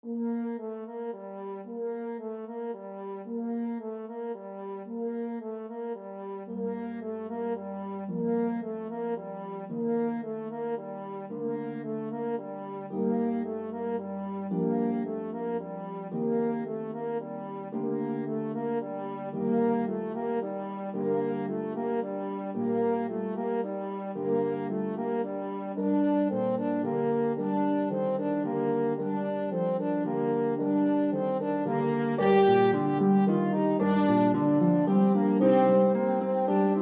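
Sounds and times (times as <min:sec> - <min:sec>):
French horn: 0:00.0 - 0:36.8
pedal harp: 0:11.3 - 0:36.8.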